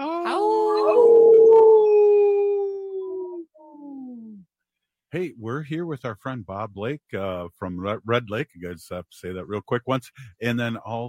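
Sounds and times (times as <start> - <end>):
single wolf howling: 0.3 - 3.4
speech: 5.1 - 11.0.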